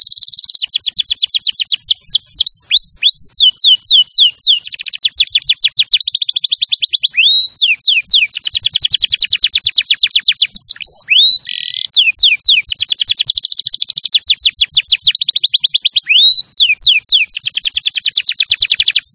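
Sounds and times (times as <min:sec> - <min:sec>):
champion canary singing rapid rolling trills and whistled notes: 0:00.0 - 0:19.1.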